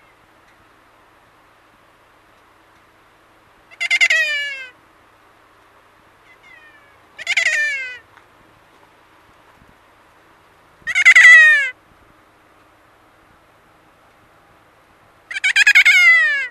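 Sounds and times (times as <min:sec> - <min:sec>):
kea wailing calls: 0:03.7 - 0:04.8, 0:06.2 - 0:08.1, 0:10.8 - 0:11.8, 0:15.3 - 0:16.4.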